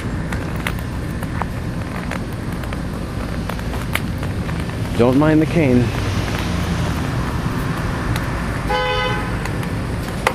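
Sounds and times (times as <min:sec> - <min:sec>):
car rumbling past on a street: 0:00.0 - 0:10.3
steady low traffic noise: 0:00.0 - 0:10.3
speech: 0:05.0 - 0:06.0
short harmonic horn-like toot: 0:08.7 - 0:09.4.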